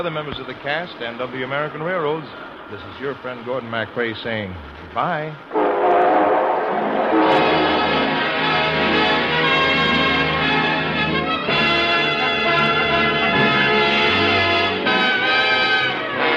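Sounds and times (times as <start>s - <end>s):
speech: 0.0s - 6.2s
train engine rumbling while pulling out: 0.0s - 16.3s
train whistle blowing chord-like tones: 5.5s - 16.3s.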